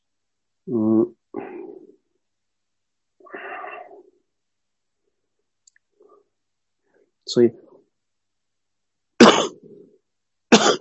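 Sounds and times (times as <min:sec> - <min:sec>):
speech: 0:00.7 - 0:01.2, 0:07.3 - 0:07.6
person coughing: 0:09.2 - 0:09.7, 0:10.5 - 0:10.7
rough throat clearing: 0:10.5 - 0:10.7.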